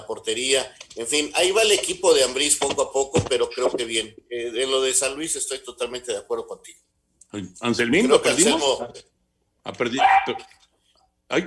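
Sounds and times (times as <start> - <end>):
speech: 0.1 - 10.6, 11.3 - 11.4
small dog barking: 10.0 - 10.5.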